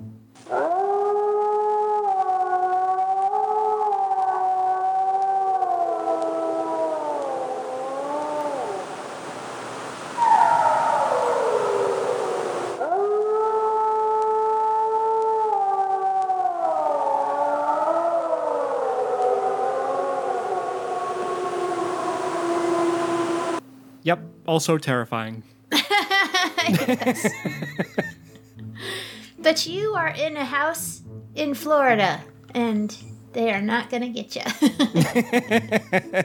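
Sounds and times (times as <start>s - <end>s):
wolf warning howls: 0.5s - 9.3s, 10.1s - 23.6s
speech: 24.1s - 25.6s, 26.7s - 28.1s, 29.5s - 36.2s
laughter: 25.7s - 28.6s, 34.5s - 36.2s.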